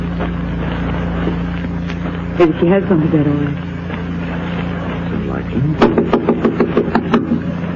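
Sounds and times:
low steady hum: 0.0 - 7.7
speech: 2.4 - 3.7, 5.4 - 6.2
firm knocks on a wooden door: 5.8 - 7.4.

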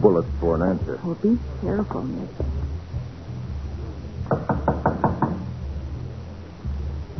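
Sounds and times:
speech: 0.0 - 2.6, 4.3 - 4.6
low hum: 0.0 - 7.1
knocking on a wooden door: 4.3 - 5.5.

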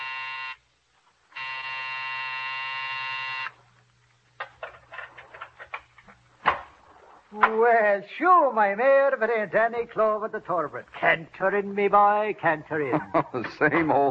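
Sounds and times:
harsh droning night door buzzer of a doctor's office building: 0.0 - 0.6, 1.3 - 3.6
speech: 7.3 - 14.0
laughter: 12.7 - 14.0.

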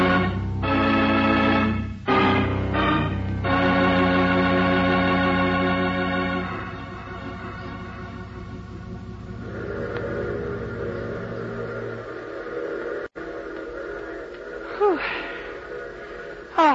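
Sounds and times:
train rumbling as it draws in through fog: 0.0 - 16.7.

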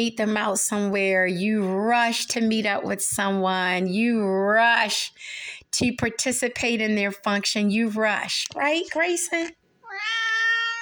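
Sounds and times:
speech: 0.0 - 9.6
cat meowing: 9.8 - 10.8.

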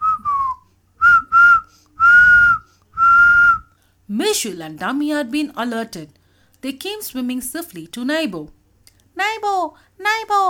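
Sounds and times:
clear steady whistles: 0.0 - 3.8
speech: 4.2 - 8.6, 9.2 - 10.4.

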